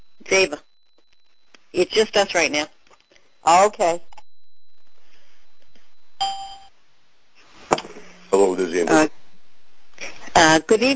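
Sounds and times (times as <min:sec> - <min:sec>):
speech: 0:00.3 - 0:00.6, 0:01.7 - 0:02.8, 0:03.4 - 0:04.1, 0:08.6 - 0:09.2, 0:10.4 - 0:10.9
electronic chime when caller joins conference call: 0:03.1 - 0:06.7.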